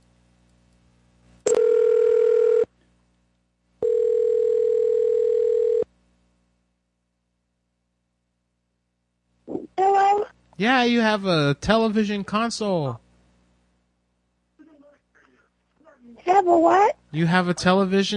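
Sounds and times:
buzzy telephone tones while placing a call: 0:01.4 - 0:02.7, 0:03.8 - 0:05.9
speech: 0:10.6 - 0:13.0, 0:16.4 - 0:18.1.

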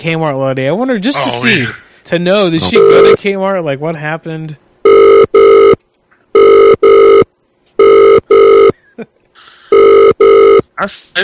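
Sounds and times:
speech: 0:00.0 - 0:05.6, 0:06.4 - 0:07.2, 0:10.8 - 0:11.2
ringback tone of an outgoing telephone call in double pulses: 0:02.7 - 0:03.2, 0:04.8 - 0:05.8, 0:06.4 - 0:08.7, 0:09.7 - 0:10.6.

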